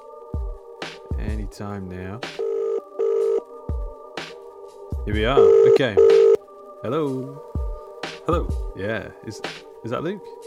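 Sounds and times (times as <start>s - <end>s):
speech: 1.2s - 2.4s, 5.0s - 7.6s, 8.3s - 10.4s
electronic telephone dialing tones: 2.4s - 3.4s, 5.4s - 6.4s.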